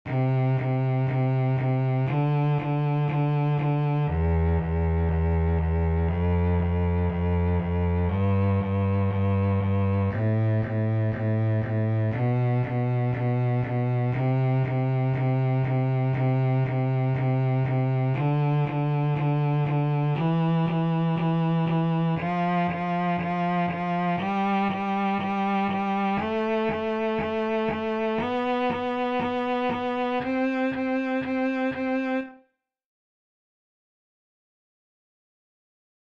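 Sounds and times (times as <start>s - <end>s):
bass playing a C major scale: 0.1s - 32.4s.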